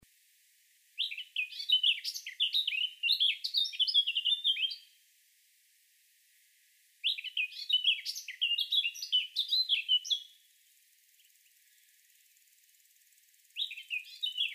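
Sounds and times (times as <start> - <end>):
Eurasian blackcap Sylvia atricapilla song: 0.9 - 5.0, 7.0 - 10.5, 13.4 - 14.5.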